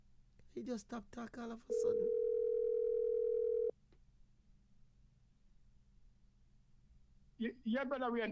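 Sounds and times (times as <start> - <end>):
faint noise: 0.0 - 8.3
speech: 0.6 - 2.2, 7.4 - 8.3
telephone dial tone while calling back: 2.0 - 3.7.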